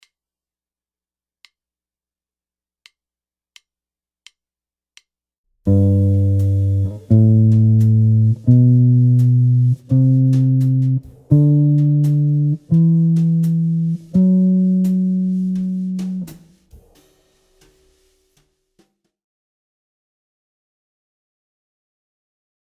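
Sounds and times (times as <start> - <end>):
jazz guitar playing diatonic chords: 5.7 - 16.6.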